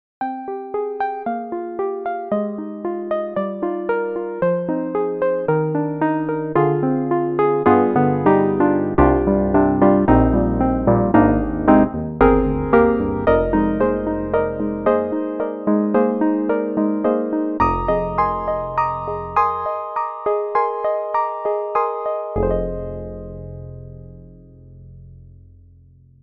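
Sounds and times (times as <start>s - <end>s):
FM Mellow Grand piano on Steinberg HALion 7: 0.3s - 25.8s.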